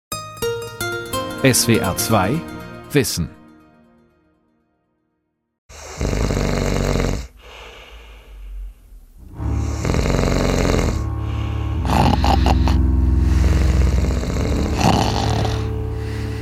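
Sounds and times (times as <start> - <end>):
speech: 1.4 - 3.4
loud human snoring with deep rasping breaths: 5.7 - 8.8, 9.4 - 16.4.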